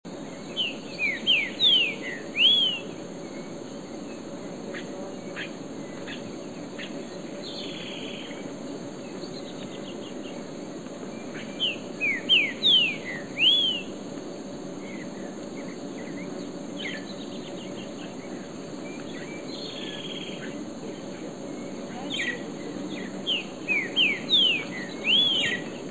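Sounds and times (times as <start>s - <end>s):
Green-winged Saltator Saltator similis singing: 0.1s - 25.8s.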